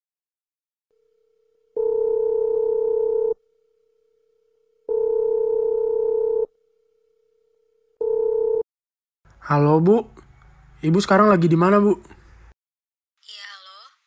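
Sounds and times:
telephone line ringing tone: 0.9s - 8.6s
speech: 9.5s - 10.2s, 10.8s - 12.2s.

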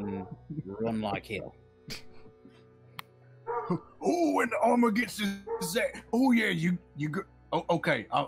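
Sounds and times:
speech: 0.4s - 2.1s, 3.6s - 8.2s
dog giving a short sharp bark at a distance: 3.5s - 3.8s, 5.4s - 5.8s.

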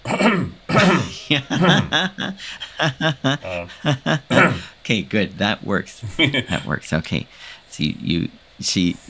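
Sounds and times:
person deliberately imitating an awkward cough: 0.0s - 4.8s
short voiced syllables like muttered speech: 0.0s - 9.0s
laughter: 0.4s - 7.2s
speech: 1.3s - 4.2s, 4.9s - 9.0s.

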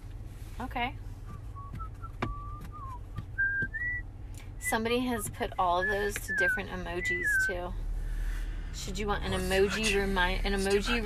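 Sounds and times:
faint low rumble: 0.0s - 11.0s
speech: 0.6s - 1.1s, 4.7s - 7.8s, 8.8s - 11.0s
person whistling a simple tune: 1.5s - 4.0s, 5.8s - 7.6s.

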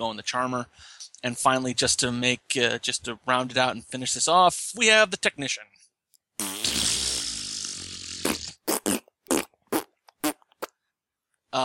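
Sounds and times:
speech: 0.0s - 5.7s
person imitating a fart with bathroom echo: 6.4s - 10.7s.

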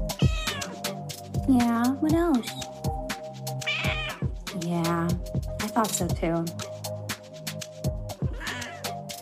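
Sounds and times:
cat meowing: 0.2s - 0.8s, 3.6s - 4.3s, 8.3s - 8.9s
speech: 1.5s - 2.7s, 4.6s - 6.7s.

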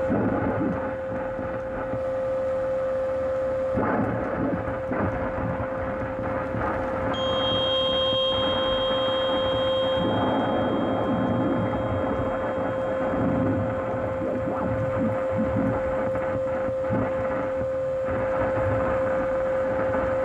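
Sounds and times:
radio interference static on an AM band: 0.0s - 1.9s, 3.8s - 20.2s
strong fixed whine of radio interference: 0.0s - 20.2s
thin high buzzing tones: 7.1s - 19.2s.

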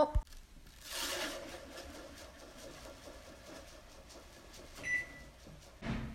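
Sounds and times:
speech: 0.0s - 0.2s
low appliance hum: 0.0s - 6.1s
sugar pouring into a bowl: 0.6s - 2.6s.

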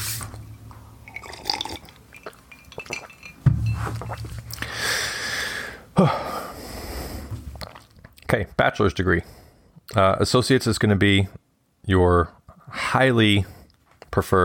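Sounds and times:
person sipping a drink: 1.0s - 5.3s, 7.3s - 8.3s
light glassy clinks and handling noises: 2.2s - 4.1s
cup knocking as it is picked up or set down: 2.8s - 4.4s
speech: 6.0s - 6.2s, 8.3s - 9.4s, 10.0s - 14.4s.

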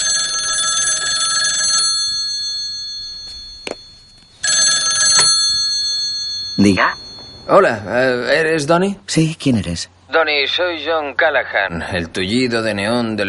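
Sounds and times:
telephone ringing on a call from a public phone in a hallway: 0.0s - 7.8s
speech: 6.6s - 13.2s.

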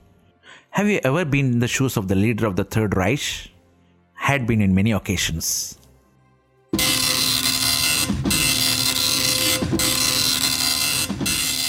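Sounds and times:
speech: 0.8s - 3.5s, 4.3s - 5.8s
dot matrix printer printing: 6.8s - 11.6s.

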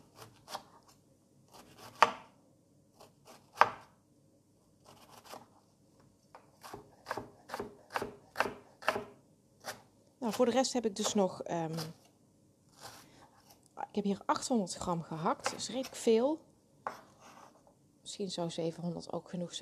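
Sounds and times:
knife chopping food into thin strips on a cutting board: 1.5s - 2.3s, 3.0s - 3.9s, 4.9s - 5.5s, 6.3s - 11.2s, 15.4s - 16.0s, 16.8s - 17.5s
speech: 10.3s - 12.0s, 14.0s - 17.0s, 18.2s - 19.6s.

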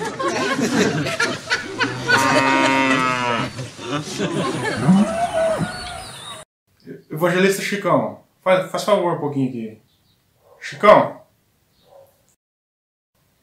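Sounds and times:
murmuring voices in a noisy room: 0.0s - 6.0s
snickering laughter: 0.0s - 6.0s
speech: 0.6s - 1.3s, 7.2s - 9.8s, 10.6s - 11.2s
cow mooing: 1.8s - 3.6s.

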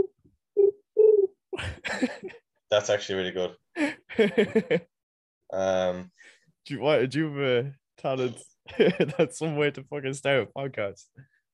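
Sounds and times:
person imitating a pigeon cooing with their voice: 0.0s - 1.4s
speech: 1.8s - 4.9s, 5.5s - 11.3s.

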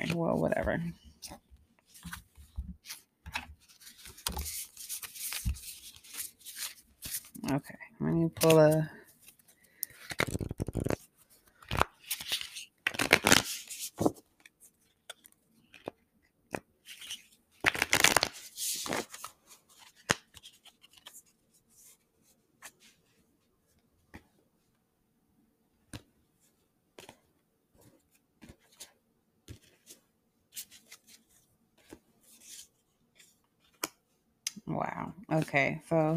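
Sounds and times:
deck of oracle cards being shuffled: 0.0s - 7.5s, 8.3s - 21.2s, 27.8s - 34.0s
speech: 0.1s - 2.2s, 7.5s - 9.0s, 35.5s - 36.1s.

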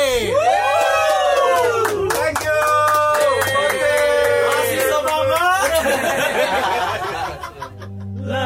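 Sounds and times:
band members shouting and whooping: 0.0s - 2.1s, 2.9s - 6.0s
laughter: 5.4s - 8.3s.

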